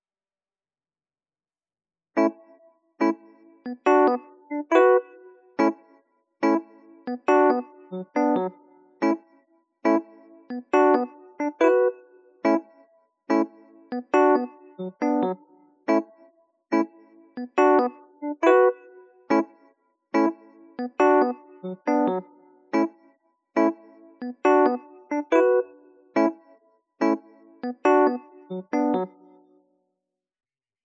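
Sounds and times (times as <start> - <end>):
electric piano music: 3.0 - 5.8, 6.4 - 9.2, 9.8 - 12.7, 13.3 - 16.1, 16.7 - 19.5, 20.2 - 23.0, 23.6 - 29.4.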